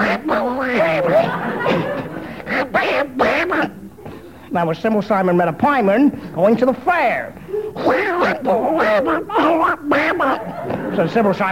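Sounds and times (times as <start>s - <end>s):
person imitating a cartoon duck with quacking speech: 0.0s - 1.2s, 2.4s - 3.8s, 7.8s - 10.5s
laughter: 0.0s - 3.6s, 7.4s - 11.5s
speech: 4.5s - 11.5s.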